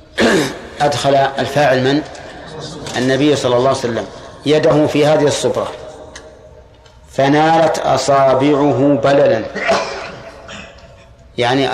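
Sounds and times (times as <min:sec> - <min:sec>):
single sharp sneeze: 0:00.2 - 0:00.7
speech: 0:00.3 - 0:05.8, 0:07.2 - 0:09.8, 0:11.4 - 0:11.7.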